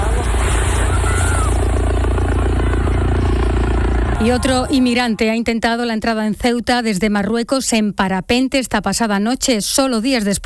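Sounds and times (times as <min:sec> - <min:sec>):
Civil Guard helicopters roaring over beaches of San Roque and La Línea de la Concepción: 0:00.0 - 0:07.0
speech: 0:04.2 - 0:10.4.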